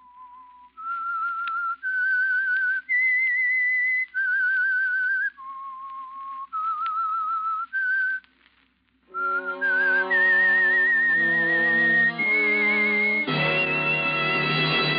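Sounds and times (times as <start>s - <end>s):
whistled theme melody: 0.0s - 8.2s, 9.1s - 14.9s
band of orchestral instruments: 9.1s - 14.9s.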